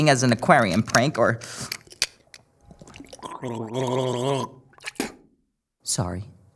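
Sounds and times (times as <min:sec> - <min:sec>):
speech: 0:00.0 - 0:01.8, 0:03.4 - 0:05.0, 0:05.9 - 0:06.3
breaths: 0:01.4 - 0:01.9
person gargling mouthwash: 0:02.7 - 0:05.2
wet mouth clicks: 0:02.7 - 0:05.3.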